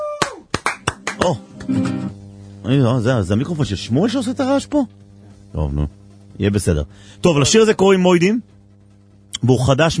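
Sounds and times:
scattered claps in a studio: 0.2 - 2.0
low hum: 0.8 - 9.9
speech: 1.2 - 8.5, 9.4 - 9.9.

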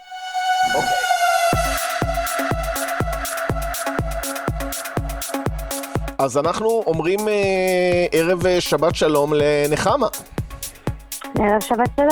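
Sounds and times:
loud steady siren-like wail: 0.0 - 6.2
speech: 0.7 - 1.1, 6.2 - 10.4, 11.3 - 12.1
punchy evenly spaced thumping beat: 0.8 - 12.1.

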